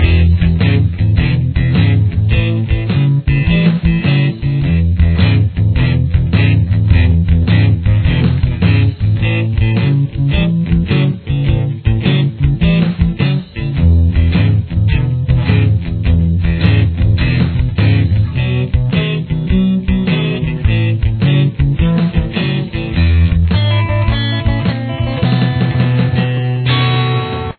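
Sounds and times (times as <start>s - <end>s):
guitar playing a shuffle in E: 0.0s - 27.5s.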